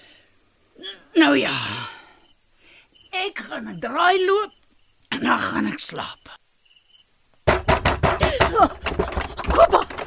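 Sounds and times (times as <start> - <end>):
speech: 1.2 - 1.9, 3.2 - 6.4, 9.6 - 9.8
loud heavy pounding on a door: 7.4 - 10.0.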